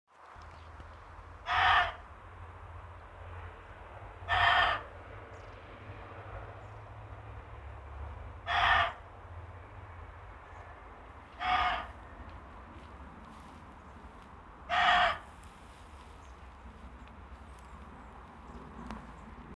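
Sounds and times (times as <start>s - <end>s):
muntjac deer barking: 1.4s - 2.1s, 4.3s - 4.9s, 8.4s - 9.0s, 11.3s - 12.0s, 14.7s - 15.3s.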